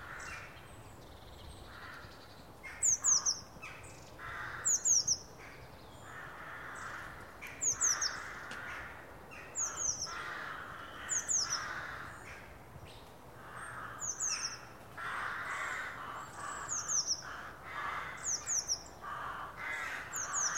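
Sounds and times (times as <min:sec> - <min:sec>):
lower harsh calls of another bird: 0:00.0 - 0:12.5, 0:13.4 - 0:20.5
Eurasian blue tit Cyanistes caeruleus giving thin high descending calls: 0:02.7 - 0:05.3, 0:06.0 - 0:08.7, 0:09.3 - 0:12.0, 0:15.2 - 0:20.5.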